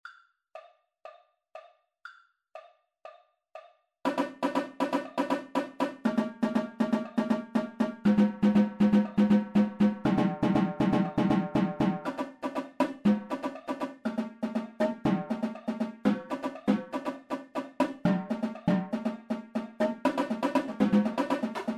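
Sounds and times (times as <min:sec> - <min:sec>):
tenor drum double beat: 0:04.1 - 0:21.7.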